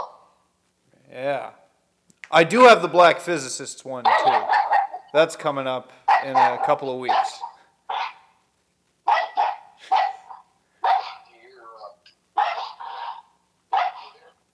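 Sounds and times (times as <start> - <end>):
speech: 1.2 - 1.6, 2.3 - 7.4
dog barking: 4.0 - 5.1, 6.1 - 8.4, 9.1 - 14.4.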